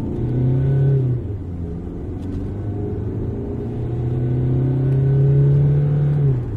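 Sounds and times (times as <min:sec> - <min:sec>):
2-litre turbo diesel car engine idling and revving: 0:00.0 - 0:06.5.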